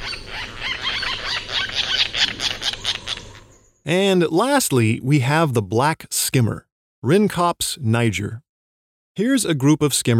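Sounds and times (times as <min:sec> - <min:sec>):
White Tern chattering calls in the Seychelles: 0:00.0 - 0:03.6
speech: 0:03.9 - 0:08.4, 0:09.2 - 0:10.1.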